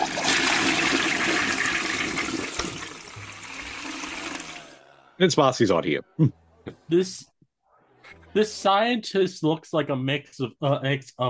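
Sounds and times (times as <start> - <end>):
toilet flushing with rushing gush of water: 0.0 - 4.8
toilet water gurgling and refilling: 0.0 - 4.8
speech: 5.2 - 7.3, 8.4 - 11.2.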